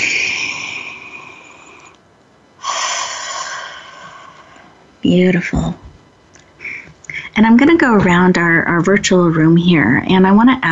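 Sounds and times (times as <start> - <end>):
deep breath in and out: 0.0 - 2.0, 2.6 - 4.8
speech: 5.0 - 5.8, 7.4 - 10.7.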